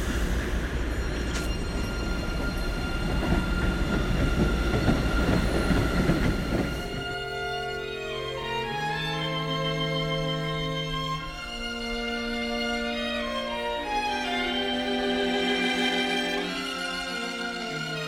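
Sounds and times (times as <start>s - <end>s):
train rolling past on tracks with rumble and rattle: 0.0s - 18.0s.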